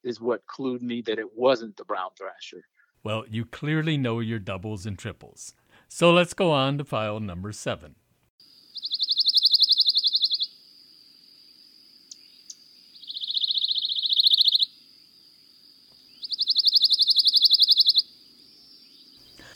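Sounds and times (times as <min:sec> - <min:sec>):
speech: 0:00.0 - 0:08.0
pine warbler singing its dry rapid trill: 0:08.5 - 0:10.5, 0:12.1 - 0:14.7, 0:16.0 - 0:19.5.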